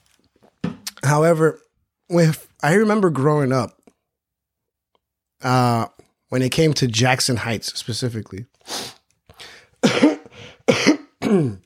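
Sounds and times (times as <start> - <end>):
speech: 1.0 - 3.8, 5.4 - 9.0, 11.3 - 11.6
person coughing: 9.8 - 11.6.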